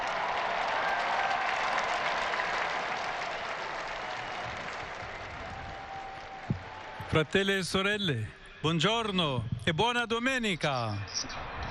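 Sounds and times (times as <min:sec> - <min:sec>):
large outdoor crowd in a square clapping: 0:00.0 - 0:07.9
speech: 0:07.1 - 0:11.4.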